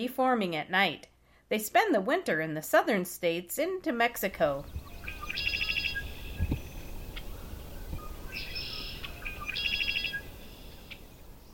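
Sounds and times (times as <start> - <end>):
speech: 0.0 - 4.8
Red-winged blackbird song: 4.5 - 11.5.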